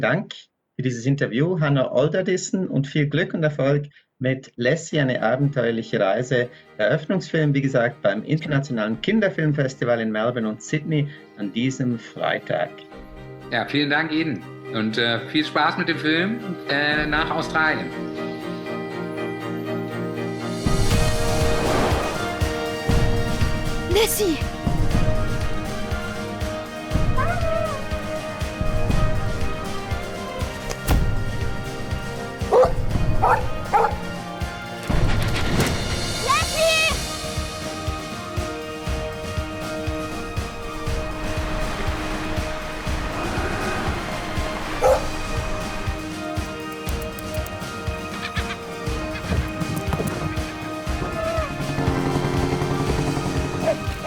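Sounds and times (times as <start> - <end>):
speech: 0.0 - 18.3, 24.0 - 24.6
steady musical background: 4.6 - 54.0
dog yipping: 27.1 - 28.0, 32.5 - 34.1, 44.8 - 45.2, 48.1 - 49.4, 51.0 - 51.6, 53.6 - 54.0
dog barking: 32.5 - 34.1, 44.8 - 45.2, 53.6 - 54.0.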